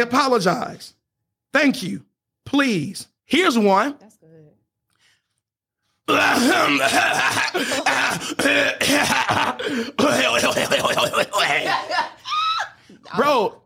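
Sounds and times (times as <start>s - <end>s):
speech: 0.0s - 4.2s, 6.1s - 12.2s, 13.1s - 13.6s
person making exaggerated throat-clearing noises: 6.1s - 11.7s
laughter: 6.4s - 13.2s.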